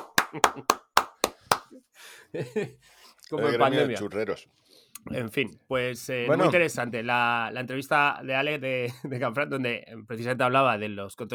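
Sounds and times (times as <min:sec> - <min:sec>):
people laughing: 0:00.0 - 0:00.9, 0:02.3 - 0:02.8
handclaps: 0:00.0 - 0:01.8
speech: 0:00.3 - 0:00.8, 0:02.3 - 0:11.3.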